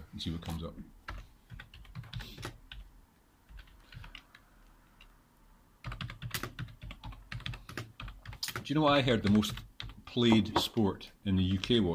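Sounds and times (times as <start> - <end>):
speech: 0.2 - 1.0, 8.7 - 11.9
typing a search on a computer keyboard: 1.1 - 2.9, 3.5 - 4.4, 5.8 - 8.6.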